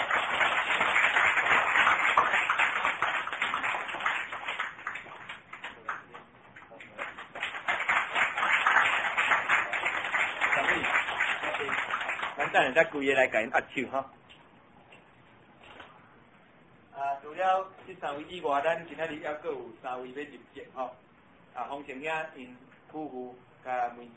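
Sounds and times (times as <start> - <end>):
audience clapping hands at a church membership welcoming: 0.0 - 12.9
speech: 12.6 - 14.2, 17.4 - 21.0, 21.6 - 24.1.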